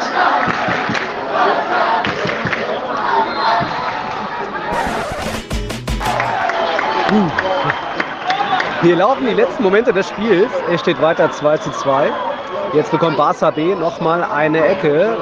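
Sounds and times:
football stadium crowd roaring and chanting after equaliser: 0.0 - 15.1
sharp bangs or claps: 4.7 - 6.4
speech: 8.8 - 15.1.

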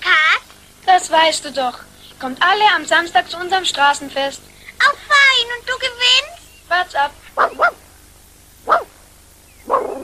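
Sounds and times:
speech: 1.0 - 7.8
dog barking: 7.4 - 7.8, 8.6 - 9.0, 9.6 - 10.0
dog whining yelp: 7.4 - 7.8, 9.6 - 10.0.

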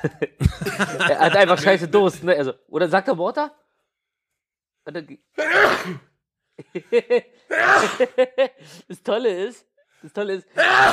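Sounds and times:
laughter: 0.0 - 2.0, 6.6 - 7.4
speech: 0.0 - 3.6, 4.8 - 10.9
man sneezing: 5.4 - 6.1, 7.5 - 8.2.

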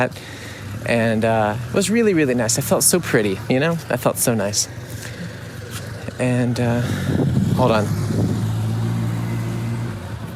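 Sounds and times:
speech: 0.0 - 5.1, 6.2 - 8.4
loud car engine rumbling with a deep droning growl: 0.0 - 10.3.

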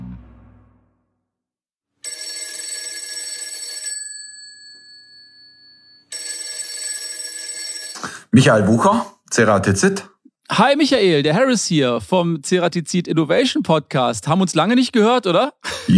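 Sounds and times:
telephone ringing with bright high electronic rings: 2.0 - 8.0
speech: 8.3 - 15.9.

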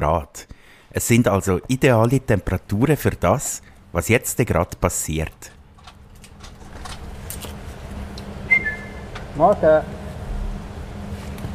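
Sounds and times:
speech: 0.0 - 5.6, 9.4 - 10.0
steady outdoor rumble: 1.5 - 11.5
zookeeper whistling to greet king penguins outside the vivarium: 8.5 - 9.1.

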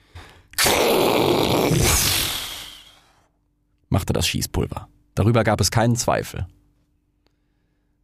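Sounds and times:
voice imitating a rocket exploding: 0.6 - 3.0
speech: 4.1 - 6.6.

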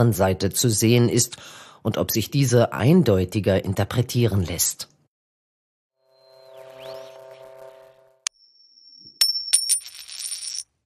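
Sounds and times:
speech: 0.0 - 4.9
thin high ringing tone of a historical coin: 6.1 - 10.6
bright clinks of a historical coin being turned over: 8.6 - 10.7.

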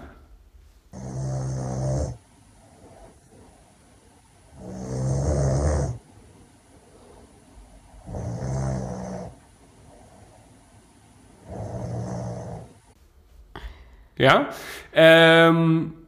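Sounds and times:
person snoring while asleep in bed: 0.9 - 10.5, 11.4 - 12.9
speech: 14.2 - 16.0.

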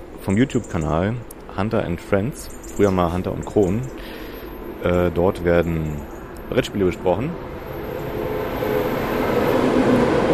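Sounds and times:
speech: 0.2 - 4.2, 4.8 - 7.5
ICE high-speed train passing by: 2.5 - 10.3.

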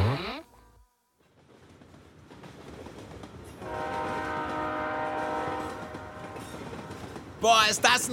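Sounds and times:
train rumbling and clattering as it approaches a station: 1.2 - 8.1
train horn blaring in a long steady blast: 3.6 - 6.9
speech: 7.4 - 8.1.

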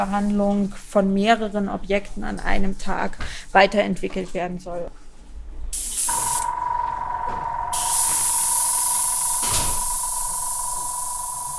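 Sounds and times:
speech: 0.0 - 5.0
spray gun spraying nanocellulose onto a sheet of paper: 5.8 - 6.5, 7.7 - 11.5
sustained tonal whine of spray gun: 6.2 - 11.5.

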